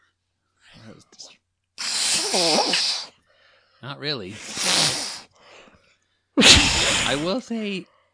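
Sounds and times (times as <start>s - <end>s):
hand-and-mouth imitation of a fart: 1.8s - 3.1s, 4.2s - 5.3s, 6.4s - 7.4s
speech: 2.3s - 2.9s, 3.8s - 5.0s, 7.1s - 8.0s.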